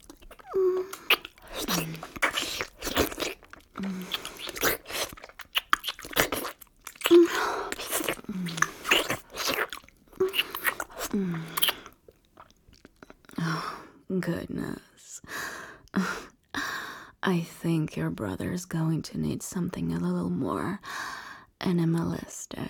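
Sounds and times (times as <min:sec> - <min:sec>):
wet chewing and slurping mouth noises: 0:00.0 - 0:13.4
speech: 0:14.3 - 0:15.0, 0:17.3 - 0:20.9, 0:21.6 - 0:22.6.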